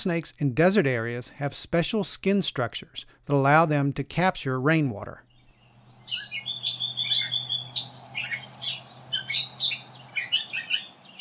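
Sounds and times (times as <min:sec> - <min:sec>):
speech: 0:00.0 - 0:05.3, 0:06.1 - 0:06.4
catbird singing chirps whistles and mewing notes mimicking other birds: 0:05.2 - 0:11.1
low steady hum: 0:05.3 - 0:11.1.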